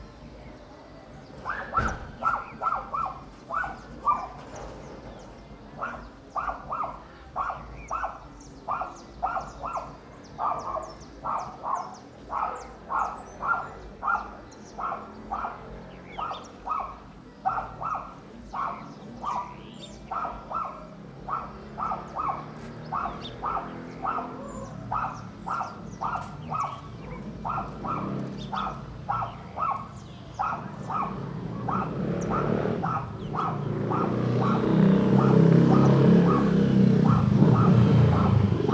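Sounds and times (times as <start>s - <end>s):
dog barking in Alto Paraiso de Goias: 1.4s - 4.6s, 5.8s - 38.7s
motorcycle starting and riding away in Alto Paraiso de Goias: 20.9s - 38.7s.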